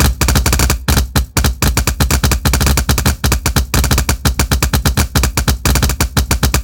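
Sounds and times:
Packard Merlin propeller engine crackling: 0.0s - 6.6s.

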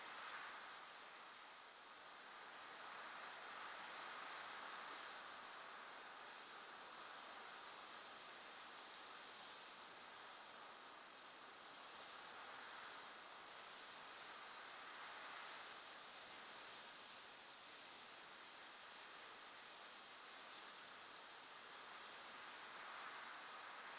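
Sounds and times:
calm dry night field ambience: 0.0s - 23.9s.

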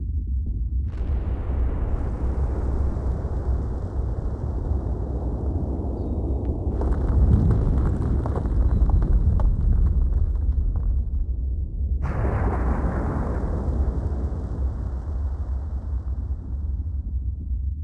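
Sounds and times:
volcano: 0.7s - 17.8s.

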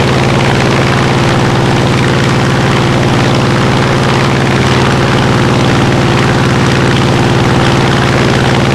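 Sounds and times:
car engine heard from the rear: 0.0s - 8.7s.

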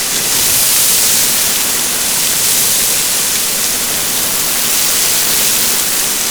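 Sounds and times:
water hydrant spraying: 0.0s - 6.2s.

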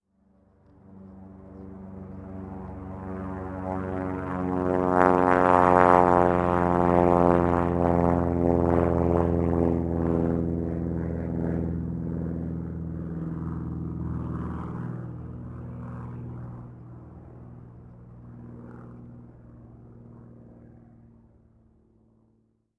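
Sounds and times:
plane in combat atmosphere: 0.0s - 22.7s.

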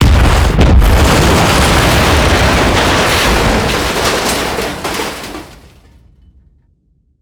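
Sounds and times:
helicopter explosion: 0.0s - 4.8s.

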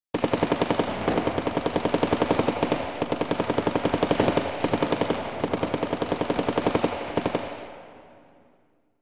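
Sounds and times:
machine gun firing in Medvedkovo: 0.2s - 8.0s.

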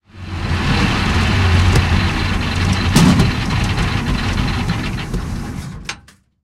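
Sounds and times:
tank engine stopping: 0.0s - 6.2s.

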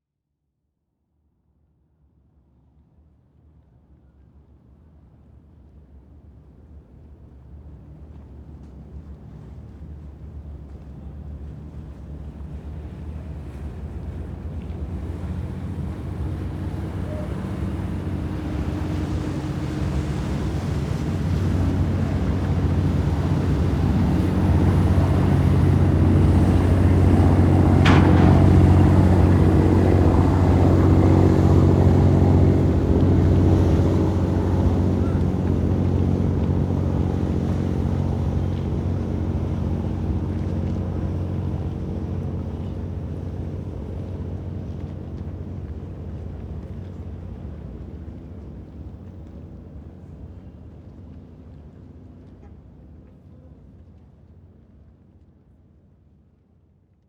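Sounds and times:
ships passing by in a hangar: 9.2s - 53.6s.

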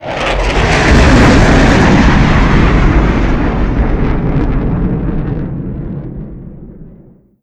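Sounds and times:
MiG-29 jet fighter flyby: 0.0s - 7.2s.

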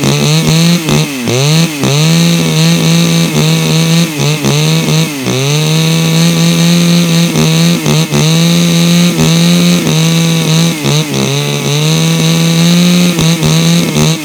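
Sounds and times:
chopsaw spinning at speed: 0.0s - 14.2s.

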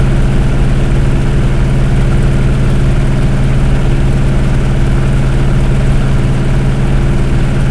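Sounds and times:
Hellcat aircraft engines heard from the cockpit: 0.0s - 7.6s.

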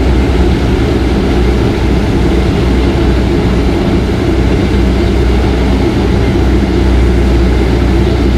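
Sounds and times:
Leclerc tank engine idling: 0.0s - 8.3s.

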